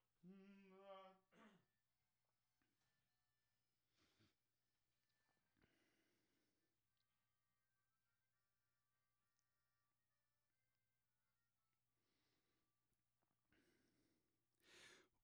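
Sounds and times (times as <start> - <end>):
voice: 0.3 - 1.2.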